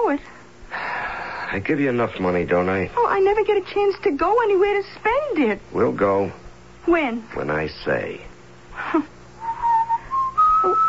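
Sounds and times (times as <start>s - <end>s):
speech: 0.1s - 0.4s, 1.5s - 8.3s, 8.9s - 9.1s
person whistling a slow sentimental melody: 9.4s - 10.8s.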